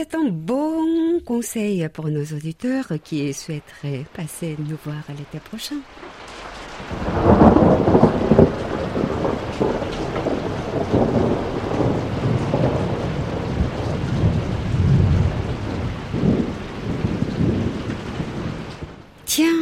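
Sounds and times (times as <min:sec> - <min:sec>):
speech: 0:00.0 - 0:07.2
heavy summer monsoon storm rain pouring: 0:02.6 - 0:19.6
deep rumbles of thunder: 0:02.8 - 0:19.4
gusty wind buffeting the microphone: 0:06.1 - 0:19.0.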